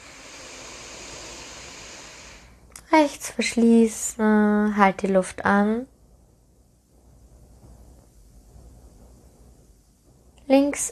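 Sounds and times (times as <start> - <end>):
inhalation through the right nostril during alternate-nostril breathing: 0.0 - 2.6
speech: 2.9 - 5.9, 10.5 - 10.9.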